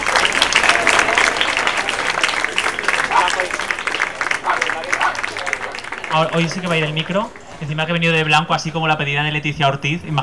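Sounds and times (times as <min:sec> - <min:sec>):
audience applause at a cabaret show: 0:00.0 - 0:07.6
speech: 0:06.1 - 0:10.2.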